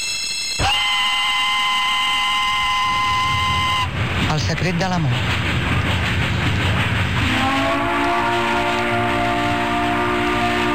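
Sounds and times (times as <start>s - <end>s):
sustained high metallic squeal: 0.0s - 3.9s
train rumbling along the rails: 0.0s - 10.7s
speech: 4.5s - 6.0s.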